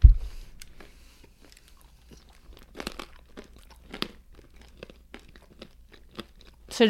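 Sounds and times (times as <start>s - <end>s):
dull thump: 0.0s - 0.4s
crunchy nut and cranberry snack being chewed: 0.6s - 6.8s.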